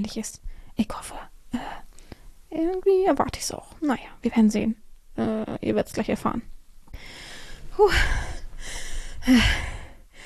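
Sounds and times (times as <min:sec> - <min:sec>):
speech: 0:00.0 - 0:01.9, 0:02.5 - 0:07.2, 0:07.8 - 0:08.3, 0:09.2 - 0:09.7
heavy breathing: 0:06.9 - 0:10.2.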